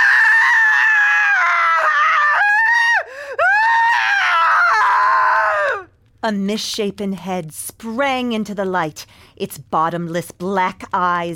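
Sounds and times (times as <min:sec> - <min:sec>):
woman's blood-curdling scream: 0:00.0 - 0:05.9
speech: 0:06.2 - 0:11.3.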